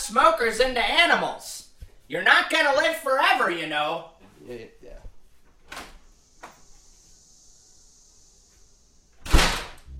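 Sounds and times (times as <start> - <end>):
speech: 0.1 - 5.0
door pulled shut with loud thud: 9.2 - 9.9.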